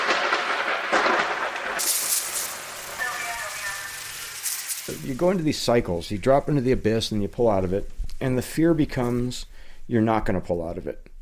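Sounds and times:
loud rolling thunder sound effect: 0.0s - 5.6s
speech: 4.9s - 11.1s.

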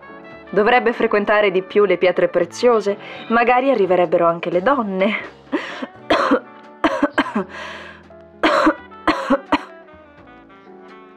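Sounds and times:
speech: 0.5s - 5.8s, 7.4s - 7.8s
gasping breaths: 5.5s - 6.0s, 7.4s - 8.1s
woman coughing in harsh wet bursts: 5.6s - 7.5s, 8.4s - 9.7s.

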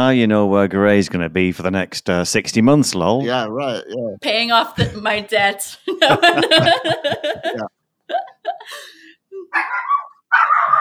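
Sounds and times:
speech: 0.0s - 10.7s
laughter: 5.7s - 9.6s
dog barking: 9.6s - 10.7s.

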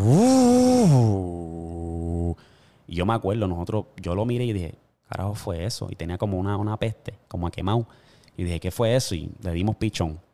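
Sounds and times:
person vocally imitating a newly bought car's air conditioner failing: 0.0s - 2.4s
speech: 3.0s - 10.3s.

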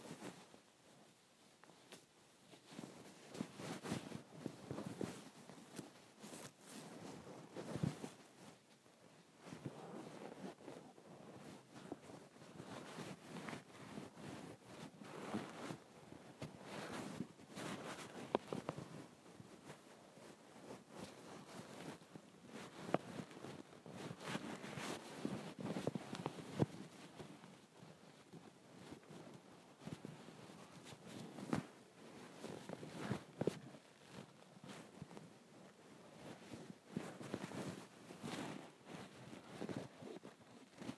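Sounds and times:
soft rushing fabric swishes and rustles of a thick comforter being folded and tossed: 0.0s - 40.9s.

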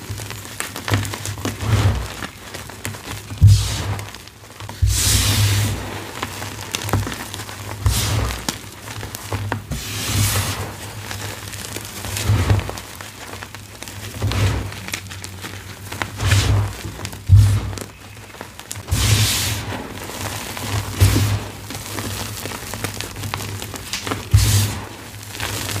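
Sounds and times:
holi powder and glitter gym chalk bombs being crushed: 0.0s - 25.7s
soft rustling: 0.0s - 25.7s.

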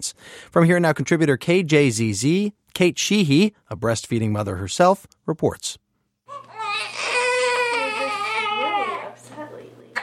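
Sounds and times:
speech: 0.0s - 5.8s
newborn baby boy crying: 6.3s - 9.2s.

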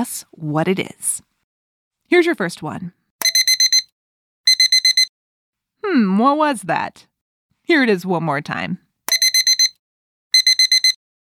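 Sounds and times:
speech: 0.0s - 1.3s, 2.1s - 3.0s, 5.8s - 7.1s, 7.7s - 8.8s
digital alarm clock sharp electronic beeps: 3.2s - 3.9s, 4.5s - 5.1s, 9.1s - 11.0s.

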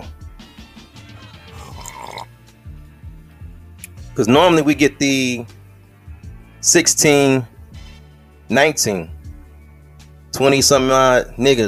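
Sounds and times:
person slurping hot coffee: 1.2s - 2.4s
throaty swallow: 1.5s - 2.3s
speech: 4.2s - 5.6s, 6.6s - 7.5s, 8.5s - 9.2s, 10.3s - 11.6s.

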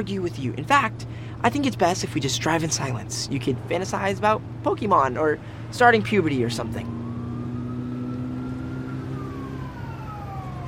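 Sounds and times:
speech: 0.0s - 7.0s
low engine rumble: 0.0s - 10.6s
approaching police car siren wailing: 5.7s - 10.6s.

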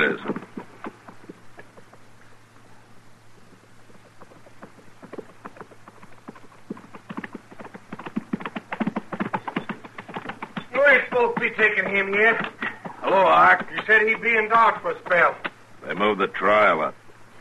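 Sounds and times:
horse galloping along a dusty trail: 0.0s - 15.6s
speech: 11.4s - 12.5s, 13.1s - 17.0s.

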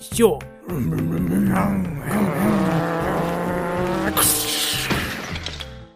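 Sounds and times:
speech: 0.1s - 2.6s
racing car engines whining and revving: 2.0s - 5.6s
racing car tires screeching: 2.0s - 5.7s
racing car crash: 4.2s - 5.7s.

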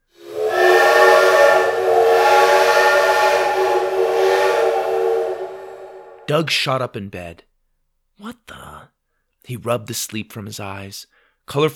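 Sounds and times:
steam whistle blowing with airy hiss: 0.0s - 6.3s
speech: 6.3s - 7.5s, 8.2s - 11.7s.

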